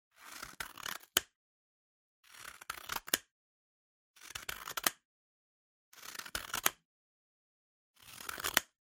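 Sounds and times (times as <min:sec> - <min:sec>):
scissors cutting paper: 0:00.1 - 0:01.4, 0:02.2 - 0:03.3, 0:04.2 - 0:05.0, 0:06.0 - 0:06.8, 0:08.0 - 0:08.8.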